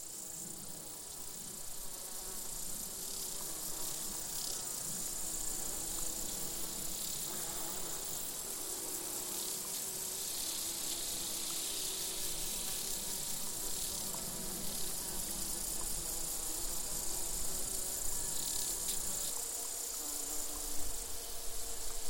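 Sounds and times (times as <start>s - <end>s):
crickets and grasshoppers chirring in an open summer meadow: 0.0s - 22.0s.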